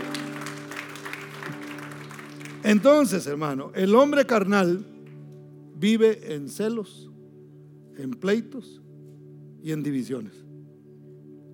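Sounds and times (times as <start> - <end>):
church audience applauding: 0.0 - 3.3
speech: 2.6 - 4.9, 5.8 - 7.1, 8.0 - 8.8, 9.6 - 10.4.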